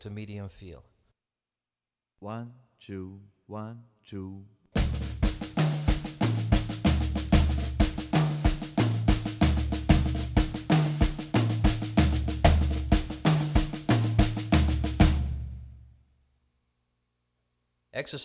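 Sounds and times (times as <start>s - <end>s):
drum kit playing maracatu rhythm: 4.8s - 15.8s.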